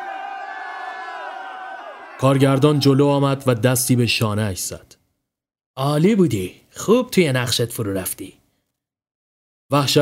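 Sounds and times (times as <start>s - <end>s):
film crew cheering and whistling on a film set: 0.0s - 3.4s
speech: 2.2s - 5.0s, 5.8s - 8.4s, 9.7s - 10.0s.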